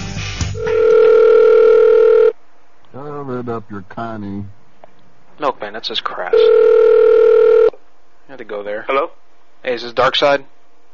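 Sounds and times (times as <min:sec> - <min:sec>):
telephone line tone while placing a call: 0:00.6 - 0:02.4, 0:06.3 - 0:07.7
speech: 0:03.6 - 0:04.6, 0:05.4 - 0:07.3, 0:08.3 - 0:10.6.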